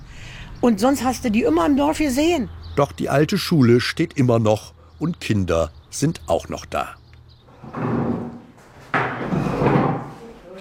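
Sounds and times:
speech: 0:00.6 - 0:07.0
wooden chairs lifted down from tables in an old primary school: 0:07.5 - 0:10.4.

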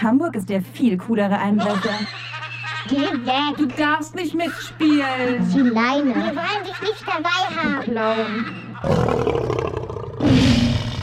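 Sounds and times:
speech: 0:00.0 - 0:09.6
laughter: 0:01.4 - 0:09.0
lion roaring: 0:08.8 - 0:11.0.

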